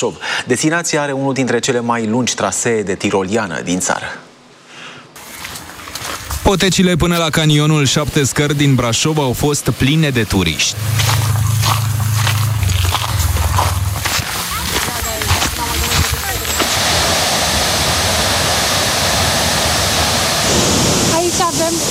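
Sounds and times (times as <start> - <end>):
speech: 0.0 - 4.3, 6.5 - 11.4
waterfall roaring in the Seven Ladders Canyon near Brașov, Romania: 7.5 - 21.8.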